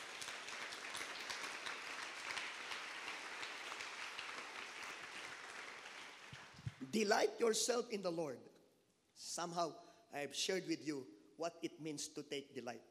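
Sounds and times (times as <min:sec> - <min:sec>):
audience clapping in sustained applause: 0:00.0 - 0:06.9
speech: 0:06.9 - 0:08.5, 0:09.4 - 0:12.8.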